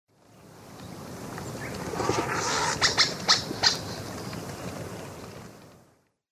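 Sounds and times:
Molothrus oryzivorus flight calls in the Eastern Lowlands of South America: 0:00.8 - 0:05.4.

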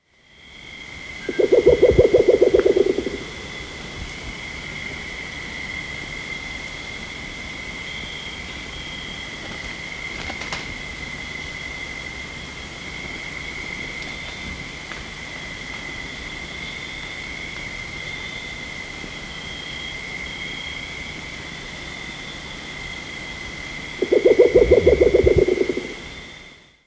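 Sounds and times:
Band-bellied owl Pulsatrix melanota calling in South America: 0:01.2 - 0:03.8, 0:24.0 - 0:26.0.

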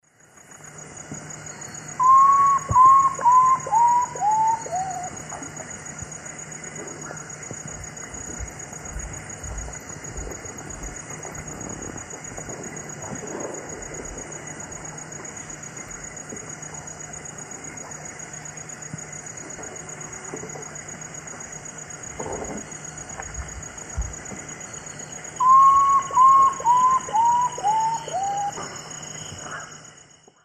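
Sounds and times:
Nyctibius griseus song in the Eastern Lowlands of South America: 0:01.4 - 0:05.5, 0:24.6 - 0:29.7.

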